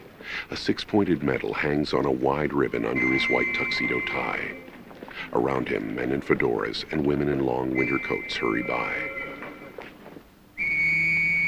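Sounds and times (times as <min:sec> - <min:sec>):
speech: 0:00.4 - 0:09.2
police whistle blown by a constable on a busy London street: 0:02.8 - 0:04.8, 0:07.6 - 0:09.9, 0:10.6 - 0:11.4.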